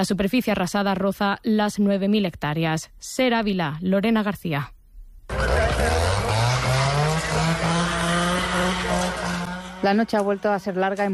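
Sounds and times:
speech: 0.0s - 5.4s, 9.8s - 11.1s
chainsaw engine revving: 5.3s - 11.1s.

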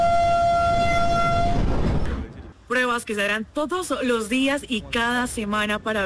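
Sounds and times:
two-tone metro train horn blast: 0.0s - 2.0s
metro train of the first Bogota Metro line rumbling on a test run: 0.0s - 6.0s
speech: 3.0s - 6.0s.

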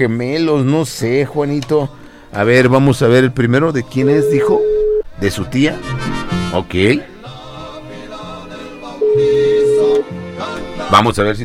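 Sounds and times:
speech: 0.0s - 7.1s, 10.9s - 11.4s
telephone ringback tone while placing a call: 4.0s - 5.1s, 9.0s - 10.0s.

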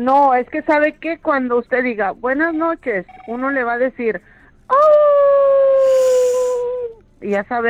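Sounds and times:
speech: 0.0s - 5.0s, 7.2s - 7.6s
person imitating a wolf howl: 4.8s - 7.0s.

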